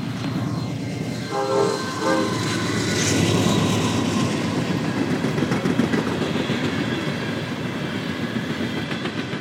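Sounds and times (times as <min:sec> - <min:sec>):
freight train rumbling past on a main line: 0:00.0 - 0:09.4
freight train horn blast: 0:01.2 - 0:02.7.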